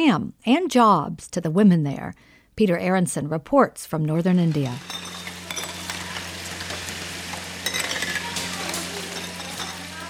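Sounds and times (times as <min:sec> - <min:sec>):
speech: 0:00.0 - 0:05.1
running splashing water in a kitchen: 0:04.4 - 0:10.0
glass jars clinking and knocking together: 0:04.5 - 0:10.0.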